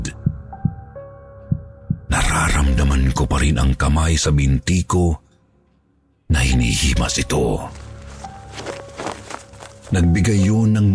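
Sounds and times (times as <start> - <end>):
deep booming thumps of a person's heartbeat: 0.0 - 2.2
speech: 3.0 - 5.2, 6.3 - 7.8, 9.9 - 10.9.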